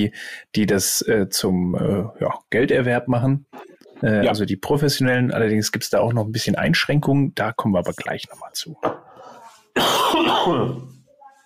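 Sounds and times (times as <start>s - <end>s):
speech: 0.0s - 9.0s, 9.8s - 11.0s
person coughing roughly: 9.8s - 11.0s.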